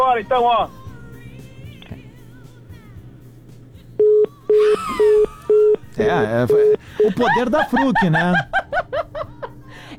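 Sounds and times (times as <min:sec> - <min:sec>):
speech: 0:00.1 - 0:00.8, 0:06.0 - 0:08.6
telephone busy signal after a dropped call: 0:04.0 - 0:05.8
laughter: 0:07.0 - 0:09.7.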